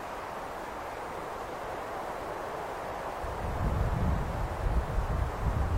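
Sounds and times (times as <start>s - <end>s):
wind whistling across a high open place at Xuefeng: 0.1s - 5.7s
low buffeting wind gust against the microphone: 3.1s - 5.7s.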